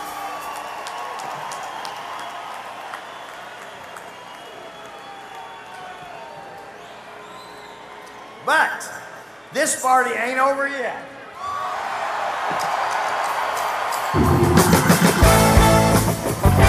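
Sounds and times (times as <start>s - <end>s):
large live crowd in Philadelphia cheering and whooping: 0.0s - 8.4s, 11.4s - 16.6s
speech: 8.5s - 11.1s, 12.5s - 12.8s.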